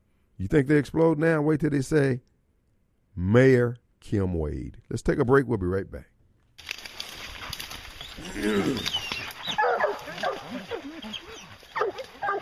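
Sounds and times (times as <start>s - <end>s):
speech: 0.4s - 2.3s, 3.2s - 6.1s, 8.2s - 9.6s
several dogs barking and yipping: 8.8s - 12.3s.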